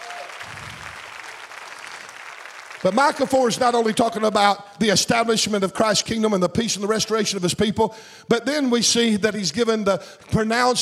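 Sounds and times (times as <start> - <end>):
audience applauding: 0.0 - 4.3
speech: 2.8 - 10.8.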